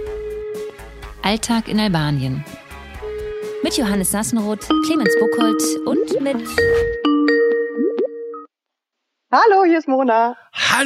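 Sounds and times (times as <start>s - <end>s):
speech: 1.2s - 2.6s, 3.6s - 7.1s, 9.3s - 10.8s
Skype call connecting chime: 4.6s - 8.5s.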